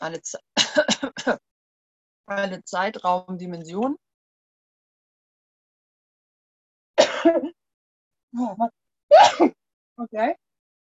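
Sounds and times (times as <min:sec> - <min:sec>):
speech: 0:00.0 - 0:01.5, 0:02.3 - 0:04.0, 0:07.2 - 0:07.6, 0:08.4 - 0:10.4
person sneezing: 0:09.1 - 0:09.6.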